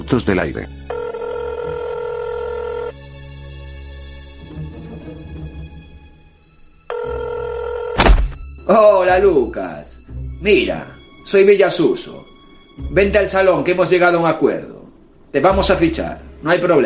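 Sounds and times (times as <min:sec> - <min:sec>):
speech: 0:00.1 - 0:00.9, 0:08.7 - 0:16.8
telephone ringing: 0:00.9 - 0:02.9, 0:06.9 - 0:08.0.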